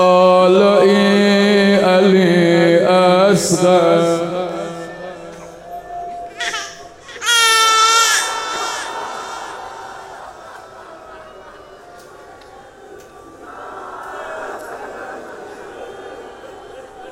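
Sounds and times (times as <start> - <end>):
murmur of noise: 0.0 - 17.0
infant crying and moaning: 5.3 - 9.1
laughter: 8.0 - 17.0.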